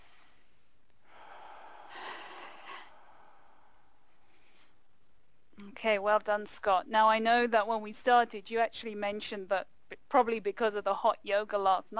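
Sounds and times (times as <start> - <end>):
deep comfortable breath during a relaxation exercise: 0.0 - 4.9
speech: 5.8 - 11.9.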